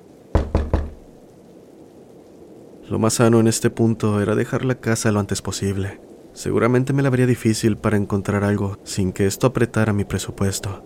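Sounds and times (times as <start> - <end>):
knocking on a door: 0.4 - 1.0
speech: 2.9 - 10.8.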